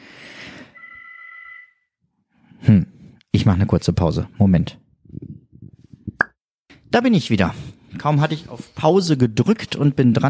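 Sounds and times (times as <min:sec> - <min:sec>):
telephone ringing in a steady electronic tone: 0:00.8 - 0:01.7
speech: 0:02.7 - 0:04.8, 0:07.0 - 0:10.2.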